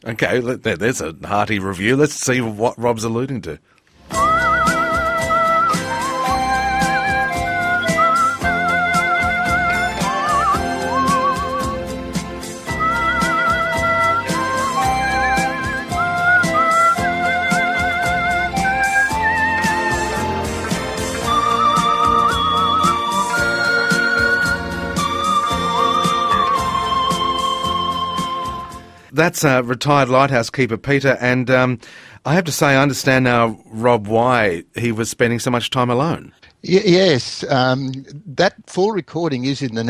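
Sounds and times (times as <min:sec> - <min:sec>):
speech: 0:00.0 - 0:03.8, 0:29.2 - 0:39.8
Hammond electronic organ playing sustained chords: 0:04.1 - 0:29.1
warbling whistled melody with vibrato: 0:04.1 - 0:29.1.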